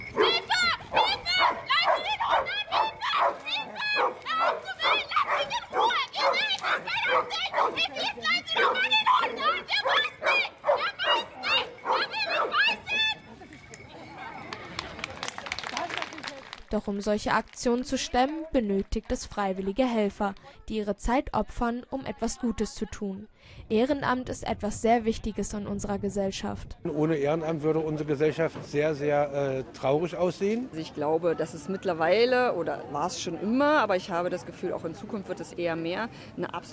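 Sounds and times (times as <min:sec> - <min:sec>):
search dog barking loudly: 0:00.1 - 0:12.7
speech: 0:16.8 - 0:36.7.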